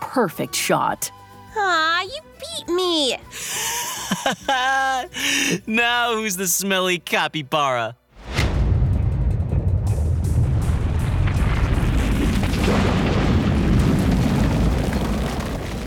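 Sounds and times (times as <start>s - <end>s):
speech: 0.2s - 8.0s
laughter: 3.4s - 5.8s
deep continuous rumbling of the ground shaking: 8.2s - 15.8s
stone walls cracking: 10.4s - 15.8s.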